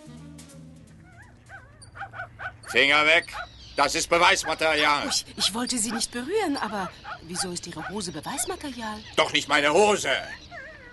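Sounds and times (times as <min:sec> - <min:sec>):
dog yipping and whimpering excitedly: 0:01.0 - 0:03.5, 0:04.2 - 0:09.2, 0:10.1 - 0:10.9
speech: 0:02.7 - 0:10.4.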